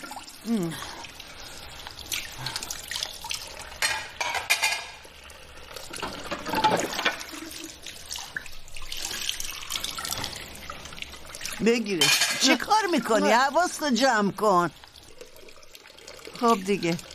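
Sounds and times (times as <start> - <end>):
very hot water running from a tap into a sink: 0.0 - 17.1
speech: 0.4 - 1.0, 11.6 - 14.8, 16.4 - 17.1
dishes clinking and clattering: 3.8 - 5.0, 6.0 - 7.4, 12.0 - 12.7.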